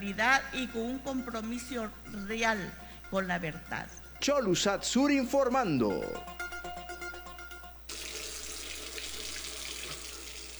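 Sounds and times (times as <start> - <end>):
speech: 0.0 - 6.4
short tonal jingle: 1.7 - 7.9
water pouring from an open faucet: 7.9 - 10.5.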